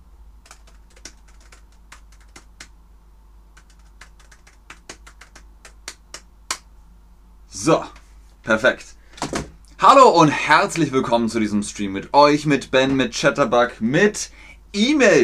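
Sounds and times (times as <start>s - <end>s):
computer keyboard typing an email: 0.4s - 2.7s, 3.6s - 6.3s
speech: 7.6s - 9.0s, 9.8s - 15.2s.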